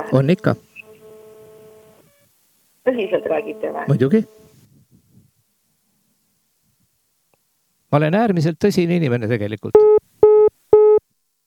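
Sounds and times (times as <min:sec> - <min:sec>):
speech: 0:00.1 - 0:00.7, 0:02.9 - 0:04.4, 0:07.9 - 0:10.0
telephone busy tone after call dropped: 0:00.8 - 0:02.2, 0:02.9 - 0:04.4, 0:09.8 - 0:11.0.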